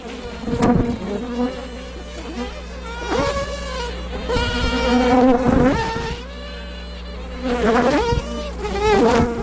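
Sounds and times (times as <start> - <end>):
many worker honeybees swarming and buzzing: 0.0 - 9.4.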